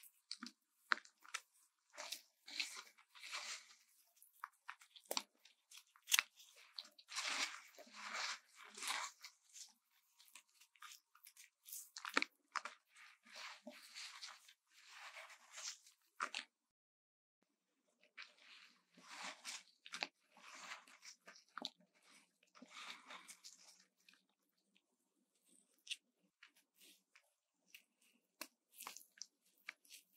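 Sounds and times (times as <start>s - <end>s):
bath bombs being handled, crunching and crumbling: 0.0s - 16.5s, 18.0s - 30.1s.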